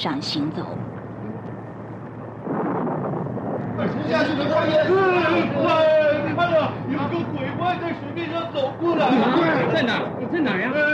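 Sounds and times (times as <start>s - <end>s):
speech: 0.0s - 1.0s, 3.8s - 5.8s, 6.4s - 10.9s
low rolling thunder of a roaring storm: 0.0s - 7.1s.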